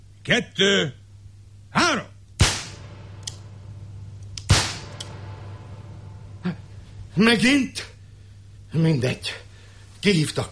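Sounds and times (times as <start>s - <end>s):
low steady hum: 0.0s - 10.5s
speech: 0.2s - 1.0s, 7.2s - 7.9s, 8.7s - 9.4s, 10.0s - 10.5s
pistol shot fired in a duel: 2.4s - 5.9s.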